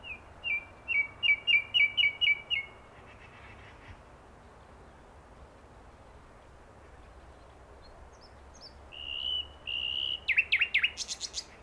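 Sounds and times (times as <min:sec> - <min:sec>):
common nightingale Luscinia megarhynchos song of down-slurred whistled notes: 0:00.0 - 0:02.8, 0:08.6 - 0:11.4.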